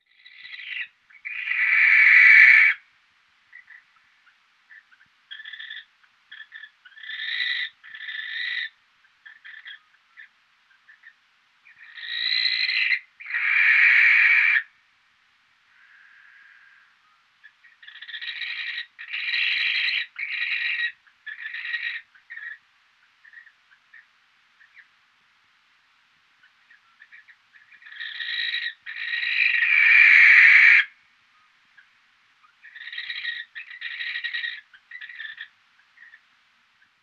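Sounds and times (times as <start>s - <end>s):
barn owl screeching: 0.1s - 2.8s, 4.7s - 10.3s, 11.7s - 14.7s, 17.6s - 22.6s, 26.8s - 30.9s, 32.6s - 36.2s.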